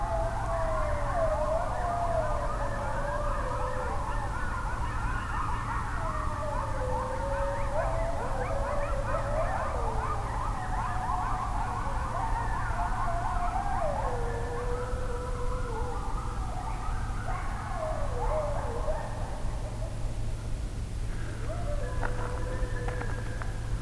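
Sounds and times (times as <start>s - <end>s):
chorus of eastern coyotes howling: 0.0s - 23.8s.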